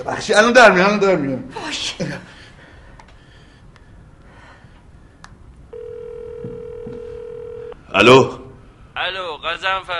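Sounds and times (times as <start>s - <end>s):
speech: 0.0s - 2.3s, 8.0s - 8.4s
telephone ringing tone while placing a call: 5.7s - 7.8s.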